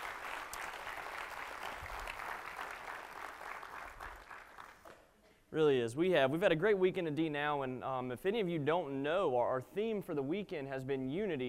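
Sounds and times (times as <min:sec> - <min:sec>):
room full of people applauding: 0:00.0 - 0:04.9
speech: 0:05.5 - 0:11.4.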